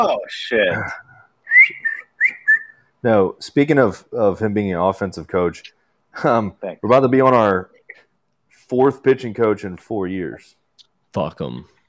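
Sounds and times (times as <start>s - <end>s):
speech: 0.0s - 1.1s, 3.0s - 7.7s, 8.7s - 11.8s
man breathing through his nose with thin high whistling: 1.4s - 2.9s.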